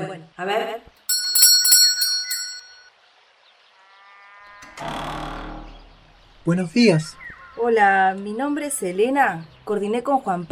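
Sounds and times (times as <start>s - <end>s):
speech: 0.3s - 1.0s, 6.4s - 10.5s
bell at a door ringing: 1.1s - 2.9s.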